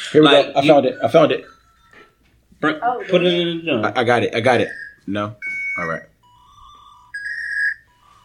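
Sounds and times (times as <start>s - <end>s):
speech: 0.1s - 1.6s, 2.6s - 6.1s
dial-up modem connecting to the internet: 4.6s - 8.2s.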